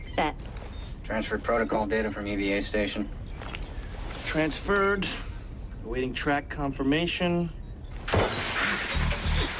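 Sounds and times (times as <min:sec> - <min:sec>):
speech: 0:00.2 - 0:03.5, 0:04.3 - 0:05.3, 0:05.9 - 0:07.6
micrometeoroid striking a glass panel of a spaceship: 0:08.1 - 0:09.5.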